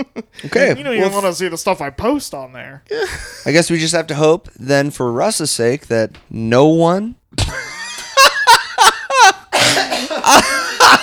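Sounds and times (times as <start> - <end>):
speech: 0.0 - 7.7
laughter: 7.4 - 11.0
stifled cough: 9.5 - 11.0.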